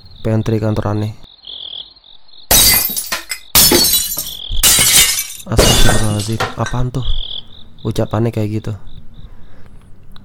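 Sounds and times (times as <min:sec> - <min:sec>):
speech: 0:00.2 - 0:01.2, 0:05.5 - 0:07.2, 0:07.8 - 0:08.9
glass or plates falling and shattering: 0:02.5 - 0:06.8.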